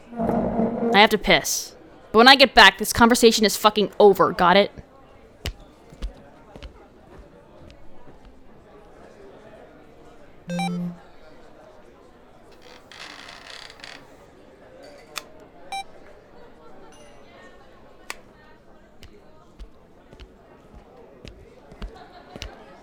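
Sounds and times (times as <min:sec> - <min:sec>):
speech: 0:00.1 - 0:04.8
phone notification buzz: 0:10.5 - 0:11.0.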